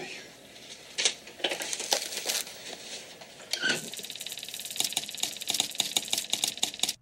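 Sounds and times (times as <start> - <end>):
spark-gap transmitter in the Titanic's radio room keying Morse distress call: 1.5 - 6.9.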